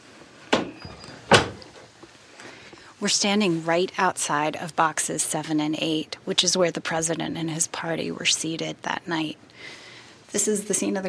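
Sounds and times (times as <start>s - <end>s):
door thumping shut: 0.5s - 1.6s
speech: 3.0s - 11.0s.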